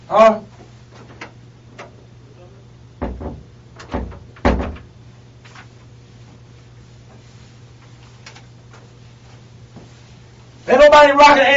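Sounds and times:
low steady hum: 0.0s - 11.5s
speech: 0.1s - 0.5s, 10.9s - 11.5s
stuck door being yanked and rattling: 3.0s - 4.9s.

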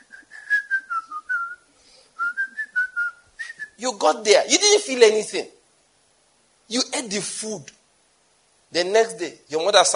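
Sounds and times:
person whistling a melodic tune: 0.0s - 3.8s
speech: 3.8s - 5.6s, 6.7s - 7.8s, 8.7s - 9.9s.

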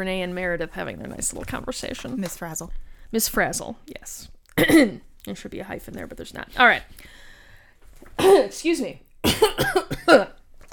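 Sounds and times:
speech: 0.0s - 7.2s, 8.2s - 10.4s
person coughing for emphasis: 4.6s - 5.0s, 8.2s - 8.6s, 9.2s - 10.4s
faint breathy noise: 6.9s - 7.8s.

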